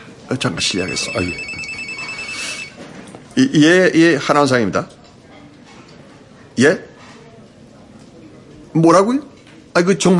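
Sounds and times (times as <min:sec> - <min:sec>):
speech: 0:00.3 - 0:01.7, 0:03.4 - 0:05.0, 0:06.6 - 0:06.9, 0:08.7 - 0:10.1
telephone ringing with high electronic tone: 0:00.6 - 0:03.0.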